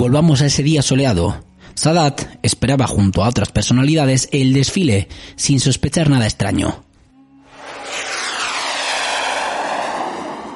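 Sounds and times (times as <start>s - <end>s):
speech: 0.0s - 6.9s
fighter jets roaring overhead at a military parade under a clear sky: 7.4s - 10.5s.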